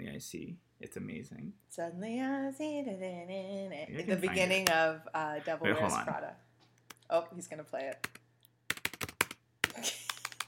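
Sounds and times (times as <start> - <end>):
speech: 0.2 - 6.5, 7.1 - 8.2, 9.8 - 10.0
typing on a computer keyboard: 8.0 - 10.4.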